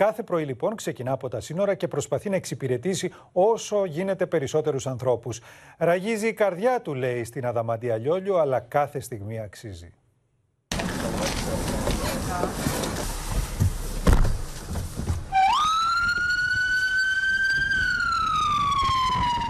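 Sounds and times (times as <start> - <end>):
speech: 0.0 - 10.0
rumbling street traffic: 10.7 - 19.4
ambulance siren: 15.3 - 19.4.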